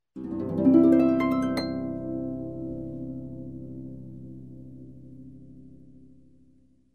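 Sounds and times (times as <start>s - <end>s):
harp ascending major arpeggio: 0.2s - 3.3s.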